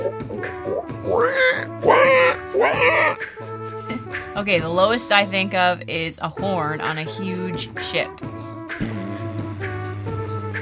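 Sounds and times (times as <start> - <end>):
person imitating nasal squealing pig oinks: 0.0 - 3.2
speech: 4.4 - 8.9.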